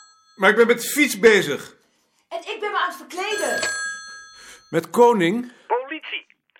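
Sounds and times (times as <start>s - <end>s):
telephone ringing with bright bell-like tones: 0.0s - 1.3s, 2.7s - 5.8s
speech: 0.4s - 1.8s, 2.4s - 3.8s, 4.7s - 5.8s.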